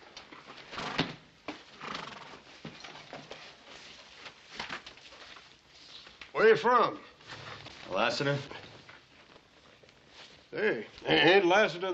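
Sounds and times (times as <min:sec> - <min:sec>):
rustle: 0:00.0 - 0:11.9
horse whinnying: 0:01.8 - 0:02.5
speech: 0:06.4 - 0:07.1, 0:07.9 - 0:08.6, 0:10.6 - 0:11.9.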